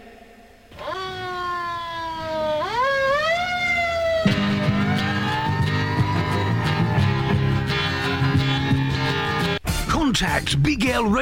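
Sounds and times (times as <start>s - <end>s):
police siren wailing: 0.7s - 9.4s
speech: 10.2s - 11.2s.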